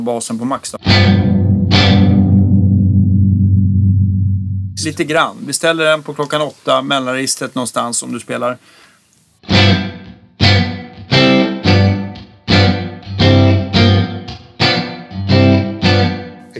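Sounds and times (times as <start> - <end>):
speech: 0.0 - 1.3, 4.8 - 8.9
electric guitar strumming full chords through a reverb pedal: 0.8 - 5.0, 9.4 - 16.5.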